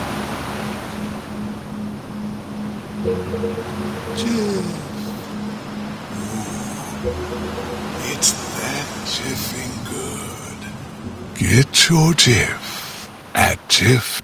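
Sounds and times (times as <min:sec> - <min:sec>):
rushing ocean surf: 0:00.0 - 0:14.2
low humming tone: 0:01.4 - 0:08.5
speech: 0:03.0 - 0:04.8, 0:07.0 - 0:10.4, 0:11.0 - 0:12.7, 0:13.4 - 0:14.2.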